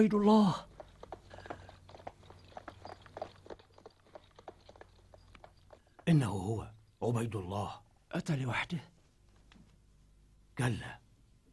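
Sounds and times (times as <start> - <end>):
speech: 0.0 - 0.7, 6.1 - 8.9, 10.6 - 11.0
horse hooves clopping: 0.0 - 7.0
low hum: 0.0 - 11.5.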